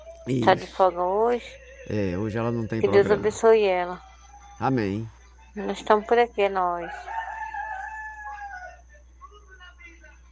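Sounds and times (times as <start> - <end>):
steady low hum: 0.0 - 10.3
speech: 0.2 - 7.2
rooster crowing: 6.6 - 9.0.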